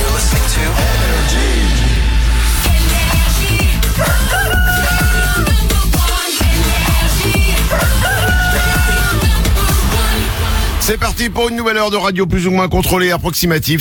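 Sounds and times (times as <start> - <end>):
loud dense music on a morning radio show: 0.0 - 13.2
rooster crowing: 3.9 - 5.6, 7.7 - 9.4
speech: 11.2 - 13.7.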